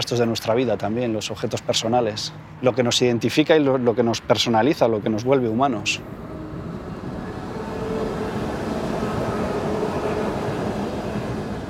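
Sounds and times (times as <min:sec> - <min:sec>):
speech: 0:00.0 - 0:06.3
commuter train passing: 0:05.1 - 0:11.6.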